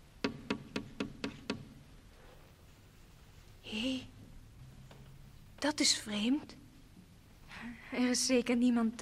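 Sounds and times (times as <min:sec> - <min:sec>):
knocking on a small wooden door: 0:00.2 - 0:01.8
speech: 0:05.6 - 0:06.6, 0:07.9 - 0:09.0.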